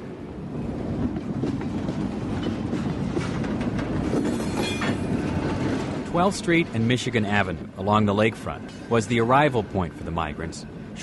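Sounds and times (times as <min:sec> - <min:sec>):
northbound train rolling along the tracks: 0:00.0 - 0:11.0
train wheels clicking over rail joints: 0:00.7 - 0:09.1
speech: 0:06.2 - 0:11.0.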